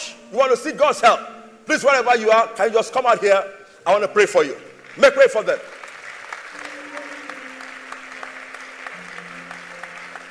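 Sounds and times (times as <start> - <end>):
speech: 0.3 - 5.8
church audience clapping: 4.7 - 10.2
sustained musical tone: 6.5 - 10.2.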